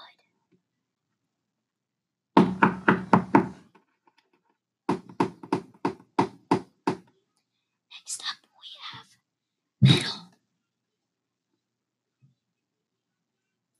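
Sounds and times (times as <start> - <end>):
knocking on oak wood: 2.4 - 3.8, 4.9 - 7.1.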